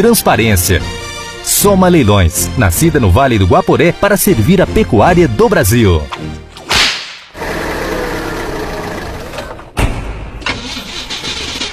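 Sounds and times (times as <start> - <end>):
speech: 0.0 - 6.4
car engine cranking, sputtering and idling roughly: 7.4 - 9.8, 10.4 - 11.7.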